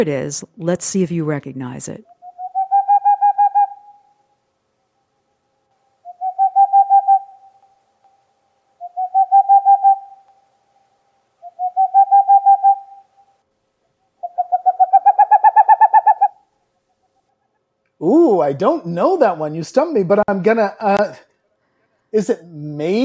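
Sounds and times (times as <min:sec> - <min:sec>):
speech: 0:00.0 - 0:02.2, 0:18.5 - 0:21.3, 0:22.1 - 0:23.0
boreal owl calling with hollow hoots: 0:02.2 - 0:04.4, 0:06.0 - 0:07.8, 0:08.8 - 0:10.5, 0:11.4 - 0:17.6.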